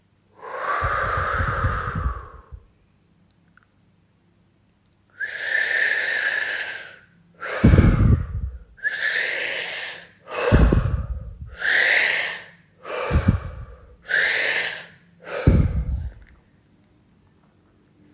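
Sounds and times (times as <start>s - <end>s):
deep slow breathing in and out during a breathing exercise: 0.3s - 2.7s, 5.2s - 16.5s.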